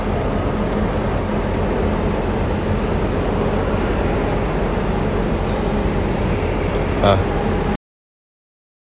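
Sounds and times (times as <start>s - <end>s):
small model trains running on track: 0.0s - 7.6s
speech: 7.0s - 7.3s.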